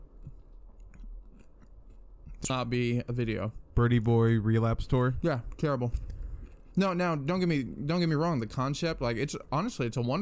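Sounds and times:
person munching food: 0.0 - 2.5, 6.0 - 6.8
low hum: 0.0 - 10.2
speech: 2.4 - 6.1, 6.8 - 10.2.

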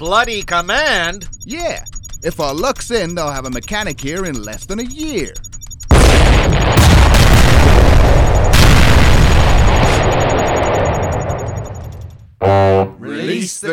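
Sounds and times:
speech: 0.0 - 5.5, 13.4 - 13.7
explosion sound effect of Earth being destroyed in a comedy sketch: 5.9 - 11.8.

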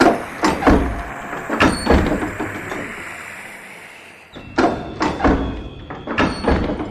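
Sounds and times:
storeroom door being opened with clunks and rattling thuds: 0.0 - 3.0, 4.4 - 6.8.

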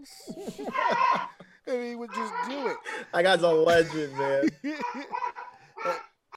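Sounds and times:
laughter: 0.1 - 6.0
dog yipping: 2.1 - 2.8
speech: 3.2 - 4.9.

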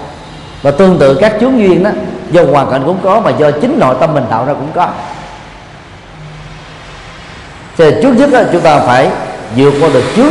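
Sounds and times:
speech: 0.6 - 5.1, 7.8 - 10.3
power drill running: 8.6 - 10.3.

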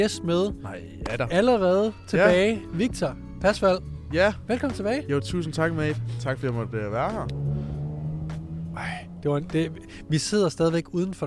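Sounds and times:
speech: 0.0 - 7.5, 8.8 - 11.2
big car engine droning as it drives by: 2.6 - 10.5.

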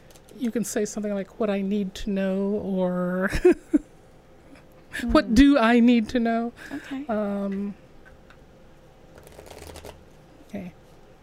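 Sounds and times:
speech: 0.4 - 3.9, 5.0 - 7.8
shuffling a deck of tarot cards: 9.1 - 10.0
cards tapping as they settle: 9.2 - 10.0.

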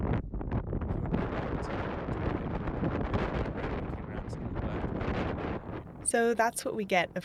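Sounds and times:
wind buffeting the microphone at a lakeside at sunrise: 0.0 - 7.2
faint human chatter: 3.5 - 4.8
speech: 6.1 - 7.2.

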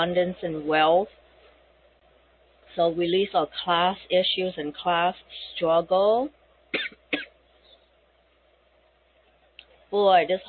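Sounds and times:
speech: 0.0 - 1.2, 2.7 - 7.3, 9.9 - 10.4
person coughing: 6.7 - 7.4.

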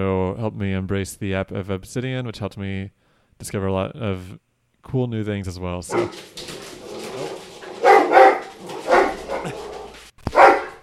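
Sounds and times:
speech: 0.0 - 6.5
dogs barking: 5.9 - 10.8.

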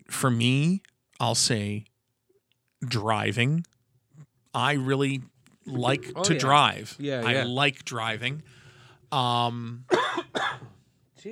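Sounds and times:
speech: 0.2 - 1.9, 2.8 - 3.8, 4.5 - 11.2
throaty vocal sound: 4.7 - 9.9
person coughing: 9.9 - 10.7.

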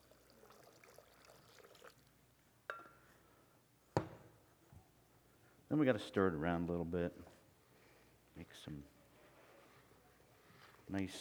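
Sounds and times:
water poured into a bucket of dirt: 0.0 - 2.1
speech: 5.7 - 7.4, 8.4 - 9.0, 10.9 - 11.1.

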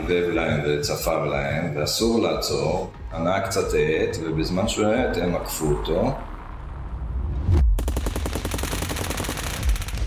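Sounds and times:
speech: 0.1 - 6.3
machine gun burst: 7.8 - 10.0.

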